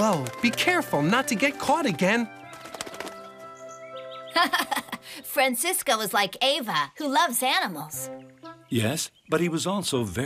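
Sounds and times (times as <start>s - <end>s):
speech: 0.0s - 2.4s, 4.4s - 10.2s
released bird flapping wings as it flies away: 0.0s - 3.6s
laughter: 4.3s - 5.2s.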